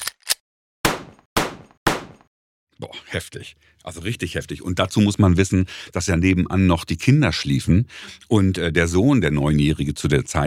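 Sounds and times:
metallic click-like revolver handling sound: 0.0 - 0.4
revolver gunshots: 0.9 - 2.2
speech: 2.8 - 10.4.

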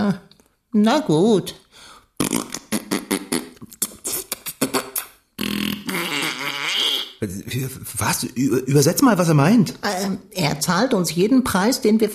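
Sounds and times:
speech: 0.1 - 1.6, 7.2 - 12.1
whoopee cushion fart noise: 2.2 - 7.2.

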